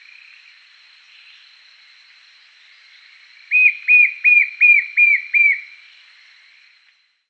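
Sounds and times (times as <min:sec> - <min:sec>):
White-shouldered Fire-eye Pyriglena leucoptera whistled call: 0:03.5 - 0:05.7.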